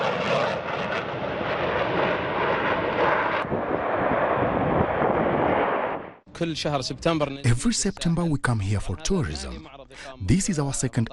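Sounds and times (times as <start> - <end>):
aircraft flyover roar at a military air show with aerobatic displays at El Alamein: 0.0 - 6.3
speech: 6.4 - 11.1.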